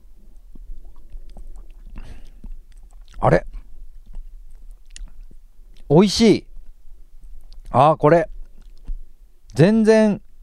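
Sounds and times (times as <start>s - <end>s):
person sipping and swallowing a cloudy drink: 0.5s - 5.9s
speech: 3.2s - 3.5s, 5.9s - 6.5s, 7.8s - 8.3s, 9.6s - 10.2s.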